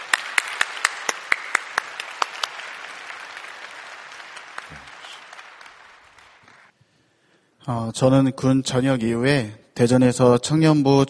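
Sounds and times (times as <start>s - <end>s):
crowd applauding to welcome a speaker: 0.0s - 6.8s
speech: 7.6s - 11.0s.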